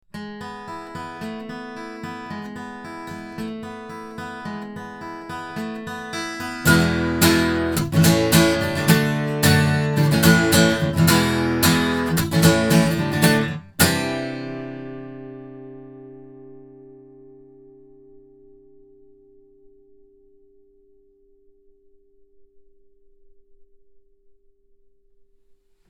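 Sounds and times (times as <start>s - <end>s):
synthesized omni guitar: 0.1s - 19.8s.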